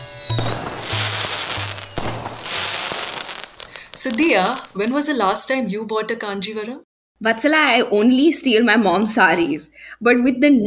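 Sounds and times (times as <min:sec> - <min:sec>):
high whistling streaks gliding downward: 0:00.0 - 0:04.9
loud firecrackers bursting and crackling: 0:00.0 - 0:05.4
speech: 0:04.0 - 0:10.6.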